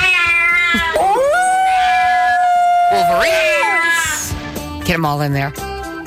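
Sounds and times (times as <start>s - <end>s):
cats yowling: 0.0s - 4.4s
speech: 0.7s - 1.3s, 3.1s - 3.6s, 4.9s - 5.7s.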